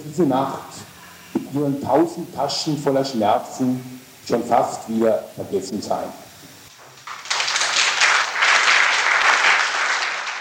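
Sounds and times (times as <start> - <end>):
speech: 0.1 - 0.8, 1.5 - 6.2
audience applause: 6.7 - 10.3.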